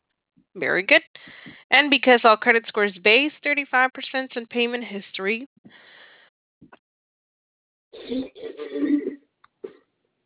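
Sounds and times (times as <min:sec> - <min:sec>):
speech: 0:00.6 - 0:05.9, 0:08.0 - 0:09.2
person coughing: 0:08.0 - 0:09.8.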